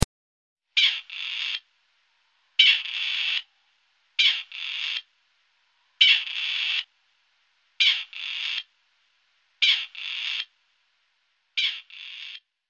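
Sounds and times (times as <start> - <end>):
partridge calling: 0.8 - 1.6, 2.6 - 3.5, 4.2 - 5.1, 6.0 - 6.9, 7.8 - 8.7, 9.6 - 10.5, 11.6 - 12.4.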